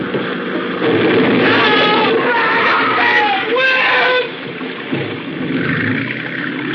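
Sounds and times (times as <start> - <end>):
boat engine roaring: 0.0 - 6.7
water splashing: 0.0 - 6.7
distressed people crying out and screaming: 1.3 - 4.4.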